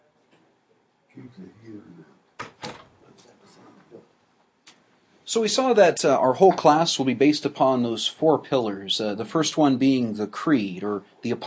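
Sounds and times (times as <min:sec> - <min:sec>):
speech: 0:01.2 - 0:02.2, 0:03.2 - 0:04.2, 0:05.3 - 0:11.4
voice murmurs: 0:01.2 - 0:02.2
door being pushed shut: 0:02.4 - 0:03.0.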